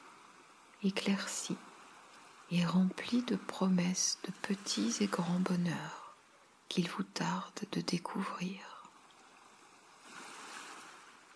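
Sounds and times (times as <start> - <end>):
ocean waves breaking on shore: 0.0 - 6.2, 9.0 - 11.3
speech: 0.8 - 1.7, 2.5 - 6.0, 6.7 - 8.8.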